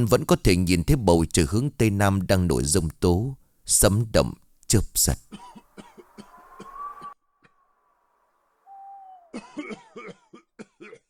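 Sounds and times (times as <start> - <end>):
speech: 0.0 - 5.4
elderly monk coughing: 5.3 - 6.4, 9.3 - 11.0.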